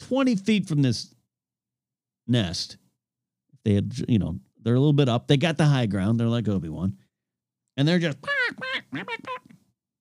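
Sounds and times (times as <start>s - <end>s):
speech: 0.1s - 1.2s, 2.3s - 2.8s, 3.6s - 7.0s, 7.8s - 9.6s
voice imitating crows squawking: 8.2s - 9.6s.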